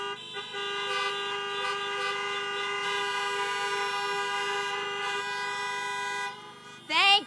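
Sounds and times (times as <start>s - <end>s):
many car horns honking to celebrate graduates: 0.0s - 7.2s.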